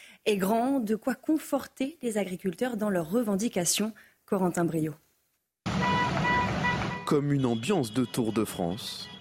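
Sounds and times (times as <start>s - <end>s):
speech: 0.2s - 5.0s, 7.1s - 9.2s
car horns honking in support: 5.7s - 9.2s.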